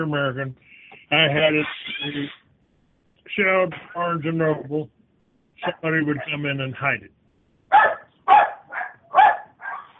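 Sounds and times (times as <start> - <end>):
speech: 0.0 - 2.4, 3.3 - 5.0, 5.6 - 7.9
dogs barking: 6.1 - 6.4, 7.7 - 9.9.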